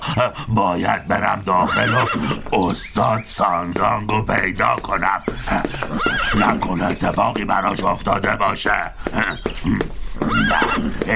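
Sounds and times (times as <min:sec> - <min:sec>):
speech: 0:00.1 - 0:11.1
horse neighing in a palace courtyard: 0:01.5 - 0:02.6, 0:05.2 - 0:06.7, 0:09.0 - 0:11.1.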